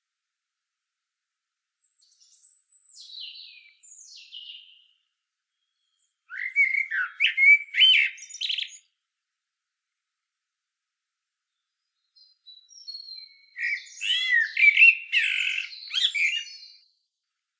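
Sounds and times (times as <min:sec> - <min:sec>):
common blackbird Turdus merula song: 0:01.8 - 0:09.0, 0:11.4 - 0:17.4.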